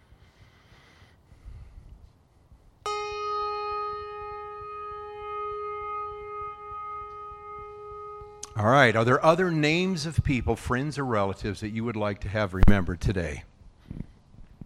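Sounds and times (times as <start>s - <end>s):
bell struck for a moment of silence: 2.9s - 10.5s
speech: 8.6s - 13.5s.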